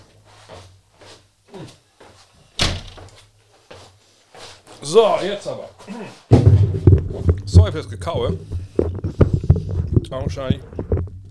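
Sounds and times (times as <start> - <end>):
door shutting: 2.4 - 3.3
speech: 4.8 - 6.2, 7.6 - 9.0, 10.1 - 10.7
handling noises and light knocks: 6.3 - 11.2.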